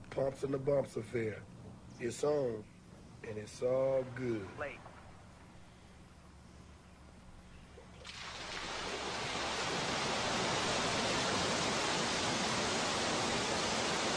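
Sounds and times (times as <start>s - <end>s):
speech: 0.2s - 4.9s
waterfall pouring into a pool: 8.0s - 14.1s.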